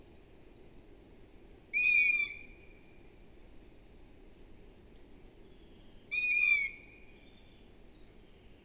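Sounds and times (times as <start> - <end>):
low background noise: 0.0 - 8.6
long-eared owl Asio otus squeaky calls: 1.8 - 2.5, 6.1 - 7.0.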